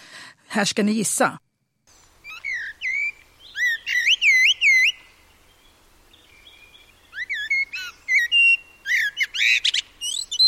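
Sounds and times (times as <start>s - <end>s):
speech: 0.6s - 1.4s
Eurasian blackbird singing fluting whistled phrases: 2.2s - 10.4s.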